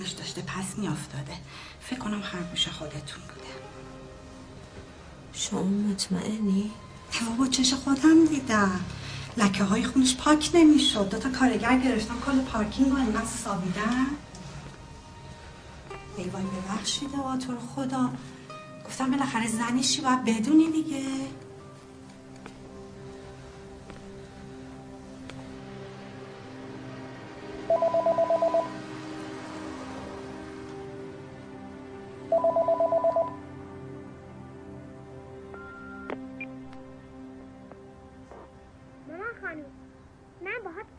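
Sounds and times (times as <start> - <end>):
speech: 0.0 - 3.6, 5.4 - 14.2, 16.2 - 18.3, 18.9 - 21.4
phone ringing unanswered: 27.7 - 28.8, 32.3 - 33.4.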